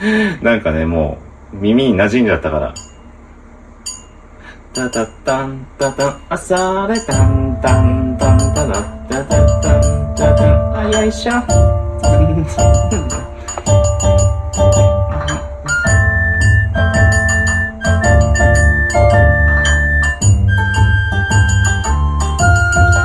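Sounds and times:
speech: 0.0s - 2.9s, 4.8s - 14.2s
steady percussion: 3.8s - 23.0s
twangy shamisen-style plucked notes in a quick rhythm: 4.8s - 23.0s
sustained gliding flute melody: 7.1s - 23.0s
laughter: 12.0s - 13.3s.

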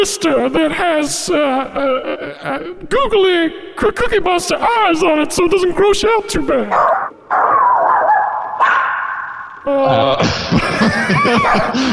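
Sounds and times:
speech: 0.0s - 8.0s, 9.6s - 11.9s
dog barking and yipping excitedly: 6.7s - 9.4s
laughter: 9.8s - 11.9s.

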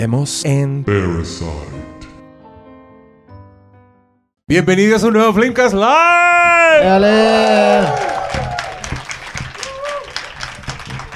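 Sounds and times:
speech: 0.0s - 2.0s, 4.5s - 8.1s
scattered shouts: 5.9s - 8.9s
live crowd whooping and cheering: 6.2s - 11.1s
live audience applause: 6.8s - 11.1s.

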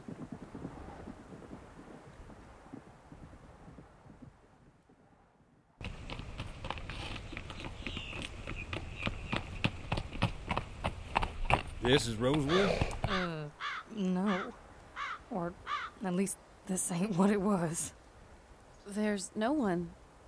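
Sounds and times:
horse hooves clip-clopping: 0.0s - 5.2s, 5.8s - 13.3s
soft outdoor wind: 0.0s - 20.2s
speech: 11.9s - 13.3s, 16.1s - 18.0s, 18.9s - 20.2s.

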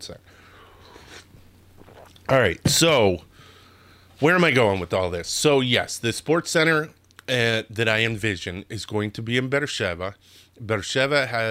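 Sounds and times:
speech: 0.0s - 0.4s, 2.3s - 3.3s, 4.2s - 11.4s
low steady hum: 0.0s - 11.4s
person sipping coffee: 0.8s - 2.3s
soft slurping mouth noises: 0.8s - 2.3s.

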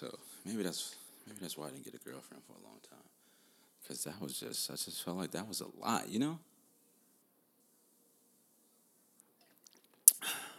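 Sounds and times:
speech: 0.0s - 3.2s, 3.8s - 6.5s
faint wet mouth clicks: 9.4s - 10.4s.

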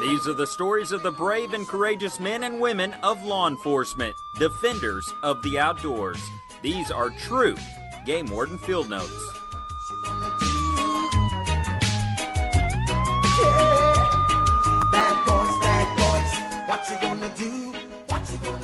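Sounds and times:
police siren wailing: 0.0s - 17.9s
speech: 0.2s - 9.4s
dramatic driving intro music with a heavy beat: 9.4s - 17.2s.

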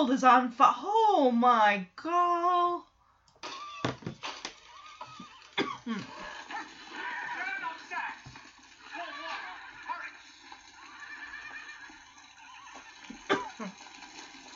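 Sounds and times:
speech: 0.0s - 2.9s, 5.9s - 6.1s
horses whinnying in a corral beside a burning barn: 3.4s - 14.5s.

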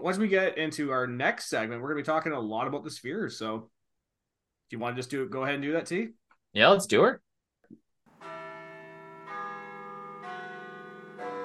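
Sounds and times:
speech: 0.0s - 3.8s, 4.7s - 8.3s
church bells ringing: 8.1s - 11.4s.

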